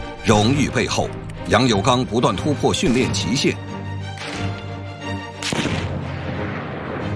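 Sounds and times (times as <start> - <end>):
speech: 0.3 - 3.7
sniper rifle shot at a military shooting range: 5.4 - 7.1.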